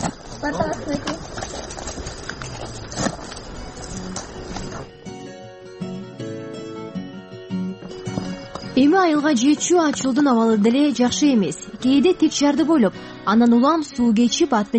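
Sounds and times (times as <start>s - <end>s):
donkey hooves clopping on a mountain path: 0.0s - 5.0s, 7.7s - 12.0s
speech: 0.4s - 1.1s, 8.9s - 14.7s
music: 2.9s - 14.7s.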